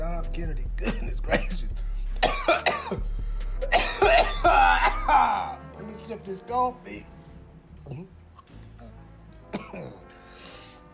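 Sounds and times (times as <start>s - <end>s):
speech: 0.4s - 1.7s, 6.3s - 7.2s
harsh raspy coughs after smoking from a pipe: 0.7s - 5.6s, 9.4s - 10.6s.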